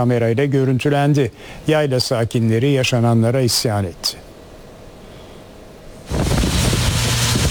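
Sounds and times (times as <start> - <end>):
speech: 0.0 - 4.3
septic waste gushing from a vacuum truck onto a pasture: 6.1 - 7.4.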